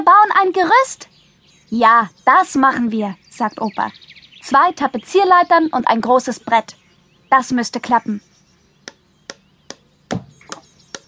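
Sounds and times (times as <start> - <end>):
speech: 0.0 - 1.1, 1.7 - 8.3
hammer blows on wood: 8.9 - 11.0.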